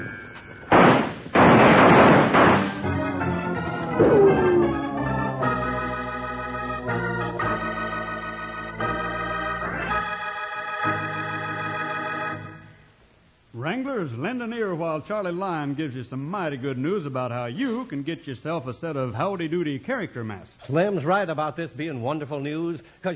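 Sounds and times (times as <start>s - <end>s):
gunfire sound effect from an old radio western: 0.7s - 3.1s
music: 2.4s - 12.9s
falling whine: 2.8s - 8.0s
speech: 14.0s - 23.1s.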